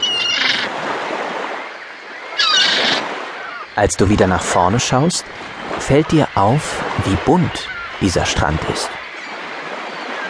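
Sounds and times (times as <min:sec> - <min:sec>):
seagull screeching loudly: 0:00.0 - 0:00.8, 0:02.3 - 0:03.8, 0:07.6 - 0:08.0
ocean surf: 0:00.0 - 0:10.2
speech: 0:03.8 - 0:09.0.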